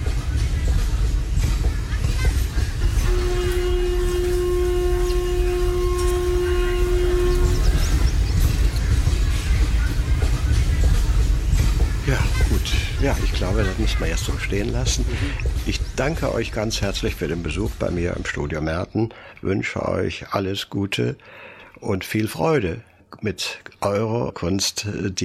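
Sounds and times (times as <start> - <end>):
train rumbling and clattering as it pulls out of a station: 0.0 - 18.9
long tonal train horn: 2.8 - 9.0
speech: 13.6 - 25.2.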